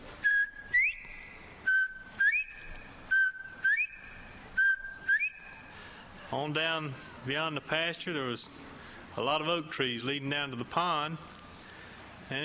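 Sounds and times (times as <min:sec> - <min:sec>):
bobwhite quail whistling in a clearing: 0:00.2 - 0:05.7
speech: 0:06.3 - 0:11.4, 0:12.3 - 0:12.4.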